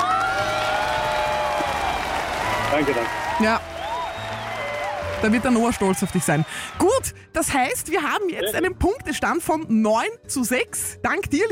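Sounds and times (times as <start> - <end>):
crowd whistles and cheers: 0.0 - 6.8
crowd applauding: 0.0 - 6.9
speech: 2.8 - 3.7, 5.2 - 11.5.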